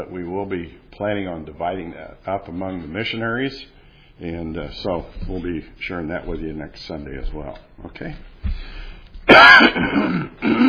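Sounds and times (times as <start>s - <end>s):
speech: 0.0s - 8.7s, 9.3s - 10.6s
person clearing throat: 9.3s - 10.6s
person coughing: 9.3s - 10.6s.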